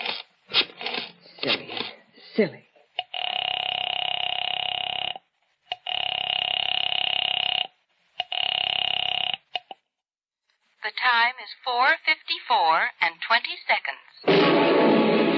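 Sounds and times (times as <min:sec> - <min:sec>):
speech: 0:02.4 - 0:02.7, 0:10.8 - 0:15.2
telephone ringing in electronic tones: 0:03.1 - 0:09.5.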